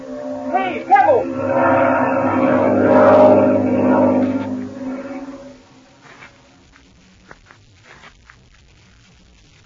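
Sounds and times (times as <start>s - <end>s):
propeller engine of a black airplane passing overhead: 0.0s - 6.0s.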